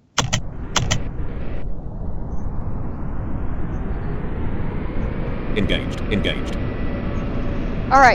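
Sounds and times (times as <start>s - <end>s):
brief metallic clicks: 0.0s - 1.1s
airplane engine roar in a flight simulator video game: 0.0s - 8.1s
speech: 5.6s - 6.8s, 7.9s - 8.1s.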